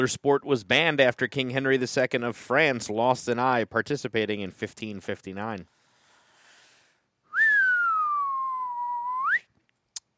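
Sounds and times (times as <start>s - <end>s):
speech: 0.0s - 5.8s
person whistling: 7.3s - 9.5s.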